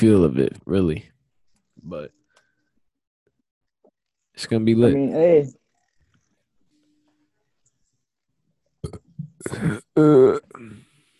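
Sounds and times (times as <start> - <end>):
speech: 0.0 - 1.1, 1.8 - 2.2, 4.4 - 5.6, 8.8 - 10.8
person burping into the microphone: 8.8 - 10.8.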